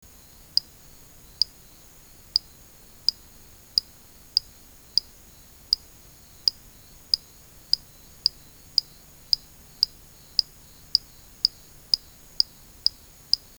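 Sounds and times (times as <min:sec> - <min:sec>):
Eleutherodactylus auriculatus frog calling: 0:00.0 - 0:13.5.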